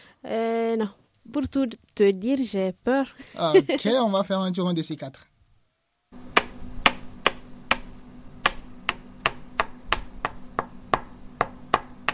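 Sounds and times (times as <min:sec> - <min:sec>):
low hum: 0:00.0 - 0:12.1
speech: 0:00.2 - 0:05.3
hammer striking a nail into wood while building a pirogue on the Niger River bank: 0:06.3 - 0:12.1.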